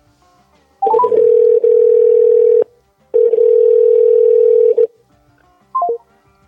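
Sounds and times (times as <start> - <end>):
quick rising beeps: 0.8 - 1.3, 5.8 - 6.0
electronic mobile phone tone as the call line drops: 0.8 - 4.9, 5.8 - 6.0.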